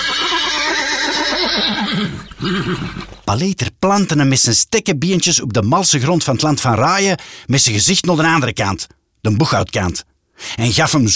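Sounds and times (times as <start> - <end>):
horse neighing: 0.0 - 3.3
speech: 1.6 - 11.1.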